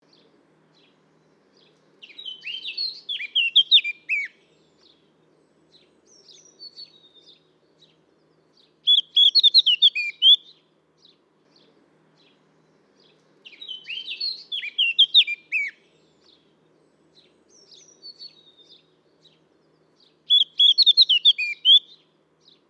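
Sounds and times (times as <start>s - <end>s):
blackcap singing: 0.0s - 22.6s.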